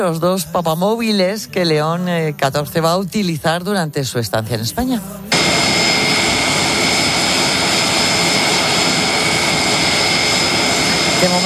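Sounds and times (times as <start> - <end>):
speech: 0.0 - 5.2, 11.3 - 11.4
Spanish Air Force airplane landing in Madrid, engine roaring: 5.3 - 11.4.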